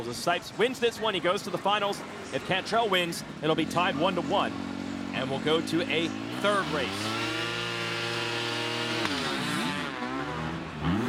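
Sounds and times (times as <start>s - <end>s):
speech: 0.0s - 7.2s
small motorcycle engine buzzing steadily: 3.2s - 11.0s.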